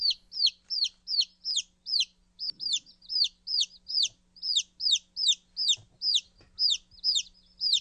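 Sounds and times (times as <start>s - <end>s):
chicks peeping: 0.0s - 7.7s
faint low hum: 0.0s - 7.7s.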